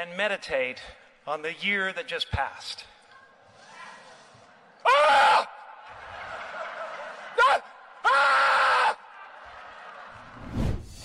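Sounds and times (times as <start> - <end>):
speech: 0.0 - 3.0
man yelling and screaming loudly: 4.9 - 5.7, 7.4 - 9.1
laughter: 5.8 - 8.0.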